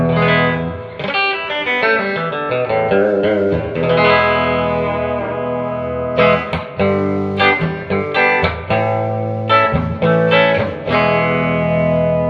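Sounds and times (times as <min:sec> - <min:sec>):
electric guitar played through an amp with heavy reverb: 0:00.0 - 0:12.2.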